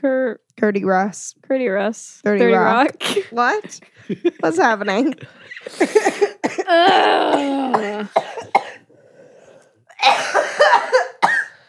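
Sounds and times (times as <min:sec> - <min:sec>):
speech: 0:00.0 - 0:08.6
laughter: 0:03.4 - 0:06.4
person coughing: 0:05.2 - 0:08.9, 0:09.9 - 0:11.6.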